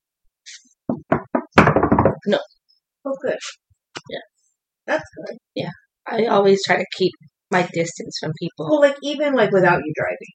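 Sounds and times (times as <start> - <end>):
firm knocking on wood: 0.9 - 2.3
speech: 2.3 - 4.3, 4.9 - 10.3.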